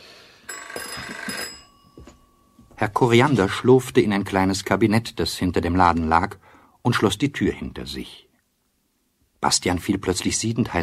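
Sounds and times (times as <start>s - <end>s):
telephone bell ringing in a shop: 0.4s - 2.8s
speech: 2.8s - 8.3s, 9.4s - 10.8s.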